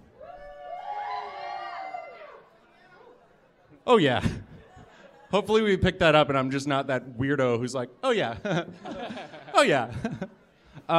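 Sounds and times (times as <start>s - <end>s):
bar audience at a live recording whooping and cheering: 0.0s - 2.5s
speech: 3.9s - 4.5s, 5.3s - 10.9s
laughter: 8.2s - 10.5s.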